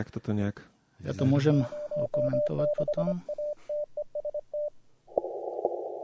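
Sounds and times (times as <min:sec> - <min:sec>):
speech: 0:00.0 - 0:03.3
Morse code telegraphy tones from a radio station calling: 0:01.3 - 0:04.8.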